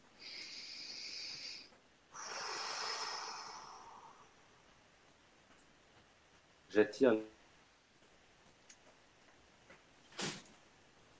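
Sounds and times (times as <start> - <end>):
deep breath taken in a breathing exercise: 0.0 - 4.6
speech: 6.8 - 7.3.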